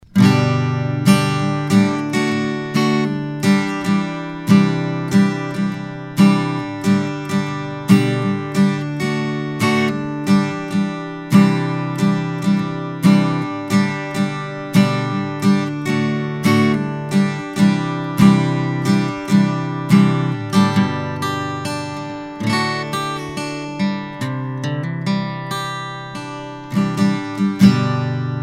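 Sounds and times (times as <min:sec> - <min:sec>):
acoustic guitar: 0:00.0 - 0:28.4.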